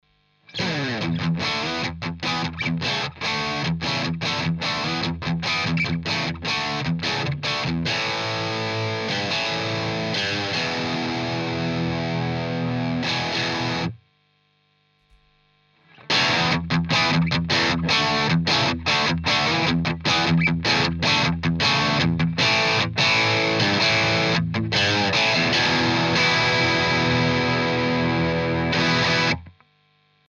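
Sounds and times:
electric guitar riff through a Screamer with tone 3 gain: 0:00.3 - 0:14.0, 0:15.8 - 0:29.6.

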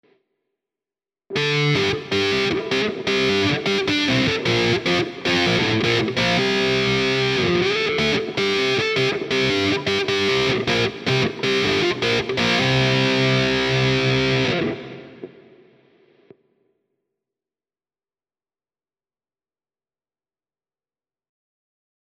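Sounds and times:
electric guitar through amp simulator with fixed wah: 0:01.3 - 0:15.4.

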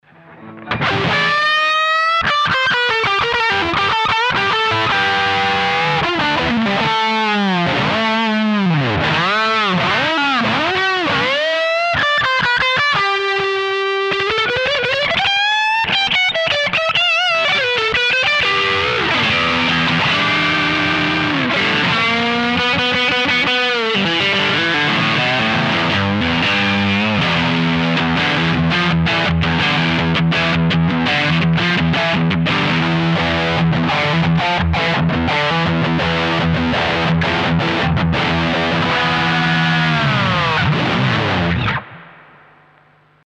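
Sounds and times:
overdriven guitar channel with boost and vibrato: 0:00.0 - 0:43.2.

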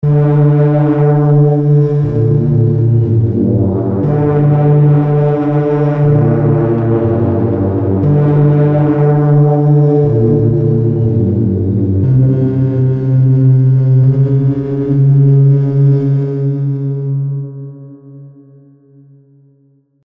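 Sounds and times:
deep bass synth pad: 0:00.0 - 0:19.5.

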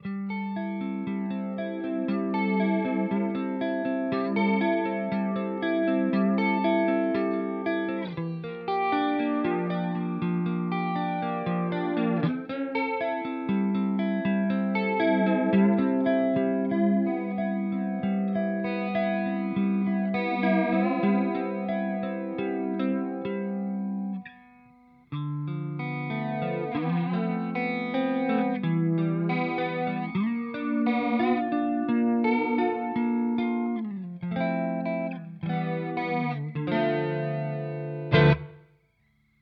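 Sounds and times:
Walrus Audio Polychrome vibrato effect: 0:00.0 - 0:38.7.

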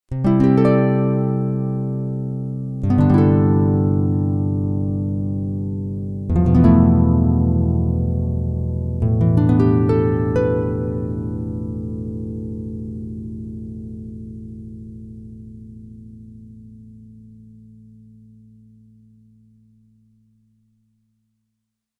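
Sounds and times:
plucked electric Celtic harp: 0:00.1 - 0:15.7.

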